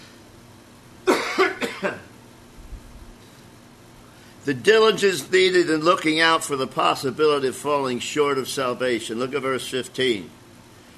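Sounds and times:
person with a returning cough coughing: 1.1 - 2.1
speech: 4.4 - 10.4.

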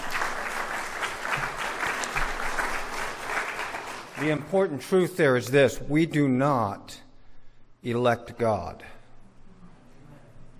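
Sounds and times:
crowd applauding: 0.0 - 4.6
speech: 4.2 - 7.0, 7.8 - 9.0.

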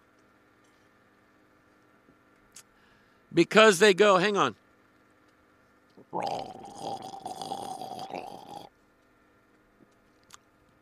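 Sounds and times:
speech: 3.3 - 4.6, 6.1 - 6.6
voice imitating roof water gurgling from a gargoyle's mouth: 6.0 - 8.7.

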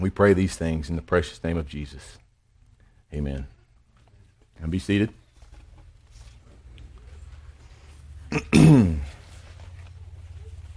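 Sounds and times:
speech: 0.0 - 2.2, 3.1 - 3.6, 4.6 - 5.2, 8.3 - 9.1
throat clearing: 8.3 - 9.2.

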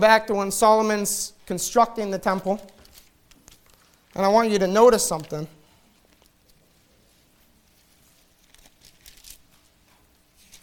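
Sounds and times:
speech: 0.0 - 2.8, 4.2 - 5.6
Bible pages being turned by a crowd: 2.6 - 4.1, 5.0 - 5.4, 7.6 - 10.6.

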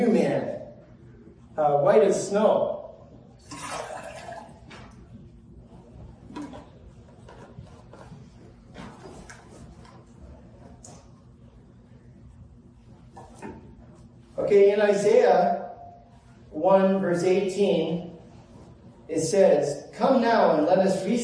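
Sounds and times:
speech: 1.6 - 2.8, 14.4 - 15.7, 16.6 - 18.1, 19.1 - 21.2
water splashing and trickling into a container: 3.4 - 4.6.

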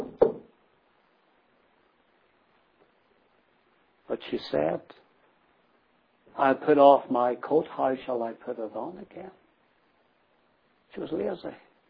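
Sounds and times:
dull knock on a wooden door: 0.0 - 0.5
speech: 4.2 - 5.0, 6.4 - 9.4, 10.9 - 11.6.

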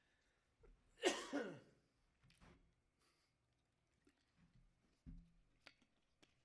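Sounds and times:
person coughing: 1.0 - 1.7.

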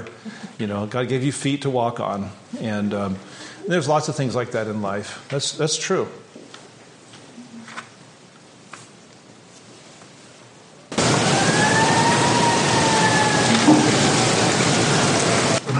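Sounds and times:
speech: 0.6 - 6.3
emergency vehicle siren passing outside: 10.9 - 15.7
loud rush of noise: 10.9 - 15.7.

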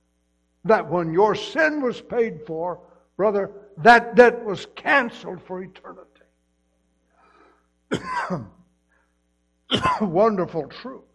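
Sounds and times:
speech: 0.6 - 6.2, 7.9 - 8.6, 9.7 - 11.1
harsh throaty cough from a person after esophageal surgery: 7.9 - 8.6, 9.7 - 10.2.

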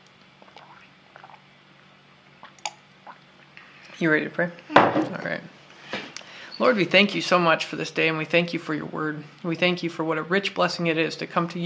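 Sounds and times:
person sipping and swallowing water from a cup: 0.3 - 4.0
speech: 4.0 - 5.6, 6.6 - 11.6.

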